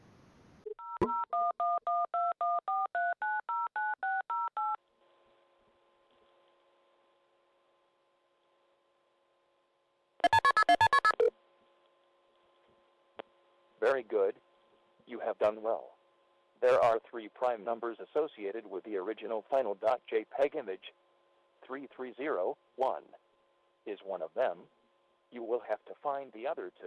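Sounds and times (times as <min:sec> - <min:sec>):
faint steady phone line tone: 0:00.6 - 0:04.8
touch-tone beeps as a phone number is dialed: 0:00.7 - 0:04.8, 0:10.2 - 0:11.3
speech: 0:14.0 - 0:14.4, 0:15.1 - 0:15.9, 0:16.6 - 0:21.0, 0:21.6 - 0:23.2, 0:23.9 - 0:26.8.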